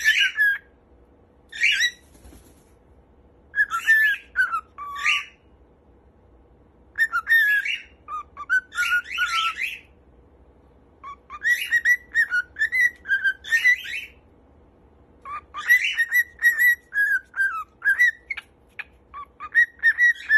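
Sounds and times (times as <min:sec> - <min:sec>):
cockatiel whistling and chirping: 0:00.0 - 0:00.7, 0:01.5 - 0:02.0, 0:03.5 - 0:05.4, 0:06.9 - 0:09.9, 0:11.0 - 0:14.2, 0:15.2 - 0:20.3
faint low hum: 0:00.0 - 0:20.3.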